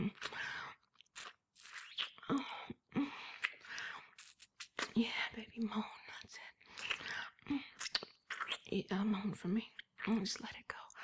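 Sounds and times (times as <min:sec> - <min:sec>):
wet sucking, smacking and slurping mouth sounds of oral sex: 0:00.2 - 0:02.5, 0:03.3 - 0:05.0, 0:06.8 - 0:08.7
speech: 0:08.8 - 0:10.6.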